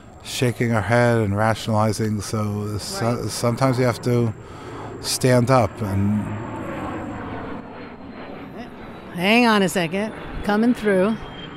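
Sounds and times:
airplane flying overhead: 0.0 - 11.5
speech: 0.4 - 6.6, 9.2 - 11.3.

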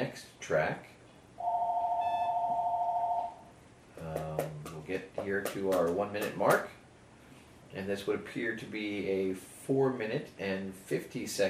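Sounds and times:
speech: 0.5 - 0.9, 4.4 - 6.8, 7.7 - 11.4
telephone ringing with a steady electronic tone: 1.4 - 3.4.

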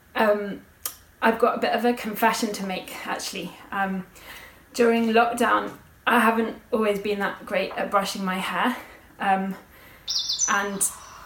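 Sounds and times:
speech: 0.2 - 11.0
quick high bird chirps: 10.1 - 11.2.

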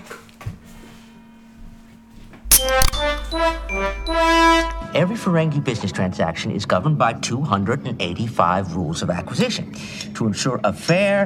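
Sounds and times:
low hum: 2.3 - 5.4
bell ringing: 2.5 - 5.0
speech: 5.0 - 11.2.

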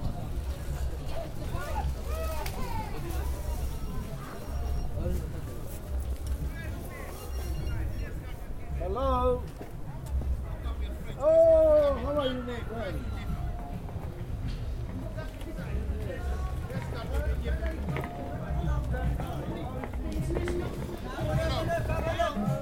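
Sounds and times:
several people talking on a busy street into a market avenue: 0.0 - 22.6
steady low rumble of traffic: 0.0 - 22.6.

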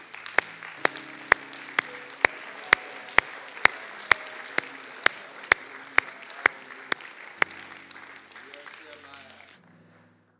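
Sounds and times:
church audience clapping hands during a morning service: 0.0 - 9.6.

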